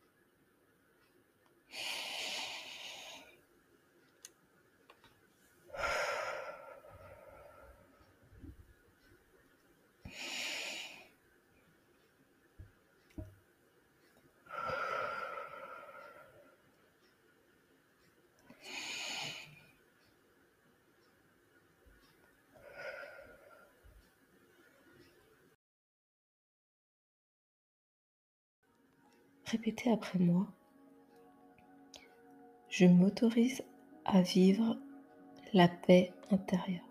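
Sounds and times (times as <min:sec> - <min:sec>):
slow deep breaths in and out: 0:01.7 - 0:03.4, 0:05.7 - 0:08.6, 0:10.0 - 0:11.2, 0:14.5 - 0:17.1, 0:18.5 - 0:19.7, 0:22.6 - 0:24.1
speech: 0:29.5 - 0:30.6, 0:32.8 - 0:34.8, 0:35.5 - 0:36.8.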